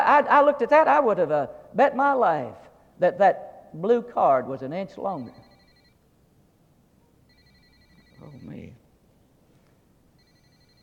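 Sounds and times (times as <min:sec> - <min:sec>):
speech: 0:00.2 - 0:05.4, 0:08.2 - 0:08.8
mobile phone ringing with a faint high electronic ringtone: 0:05.4 - 0:06.0, 0:07.3 - 0:08.7, 0:10.2 - 0:10.8.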